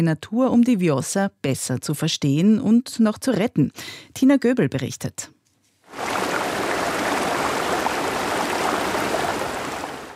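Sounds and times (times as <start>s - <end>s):
speech: 0.0s - 6.0s
flowing river water: 5.9s - 10.1s.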